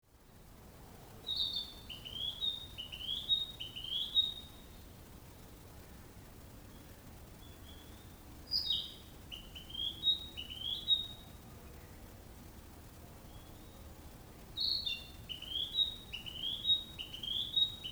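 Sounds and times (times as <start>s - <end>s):
narcissus flycatcher singing: 1.3s - 4.6s, 7.4s - 11.2s, 14.6s - 17.9s.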